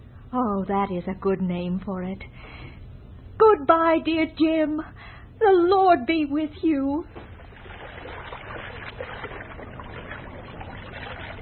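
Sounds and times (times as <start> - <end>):
speech: 0.3 - 2.6, 3.4 - 7.2
boat moving through water: 7.1 - 11.4
low rumble: 7.3 - 11.4.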